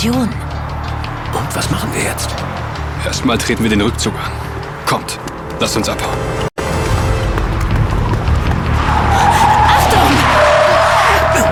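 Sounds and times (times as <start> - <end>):
speech: 0.0 - 0.6, 1.6 - 6.5
car engine roaring: 0.0 - 11.5
tires squealing as a recklessly driven car skids: 0.0 - 11.5.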